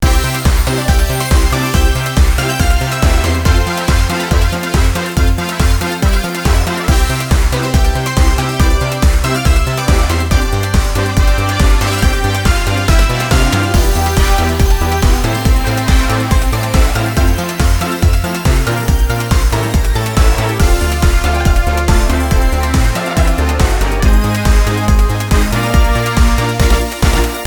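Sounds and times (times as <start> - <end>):
game result background music: 0.0 - 27.4.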